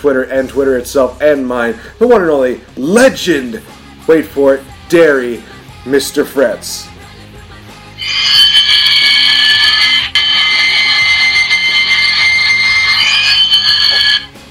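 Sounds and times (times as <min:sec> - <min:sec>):
speech: 0:00.0 - 0:06.9
shrill electronic alarm clock ringing: 0:08.0 - 0:14.3.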